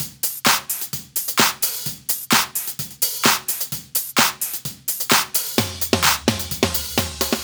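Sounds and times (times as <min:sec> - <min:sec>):
129 BPM hip house drum kit: 0:00.0 - 0:07.4.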